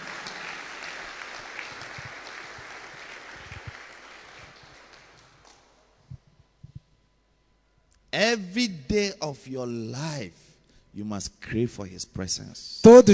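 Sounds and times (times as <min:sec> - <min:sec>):
congregation clapping at a church sermon: 0:00.0 - 0:05.8
speech: 0:08.2 - 0:10.4, 0:11.0 - 0:13.1.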